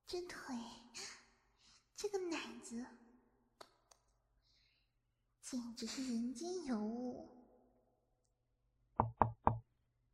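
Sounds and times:
speech: 0.1 - 0.7, 2.0 - 3.0, 5.5 - 7.4
firm knocking on a door by an arriving plumber-electrician: 9.0 - 9.6.

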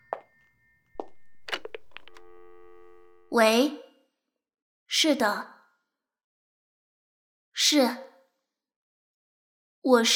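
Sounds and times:
telephone electronic beeps and clicks: 1.0 - 3.4
speech: 3.3 - 3.8, 4.9 - 5.6, 7.7 - 8.1, 9.8 - 10.1.

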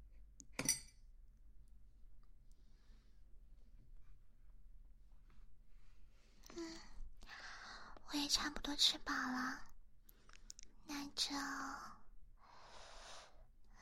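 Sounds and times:
glasses clinking in a toast: 0.6 - 0.9
soft rustling and shuffling: 3.2 - 6.4
speech: 8.3 - 9.7, 11.2 - 12.0.

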